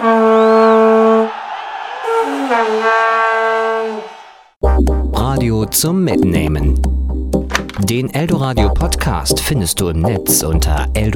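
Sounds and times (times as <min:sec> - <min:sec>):
vuvuzela horn blaring: 0:00.0 - 0:04.5
speech: 0:05.4 - 0:11.1.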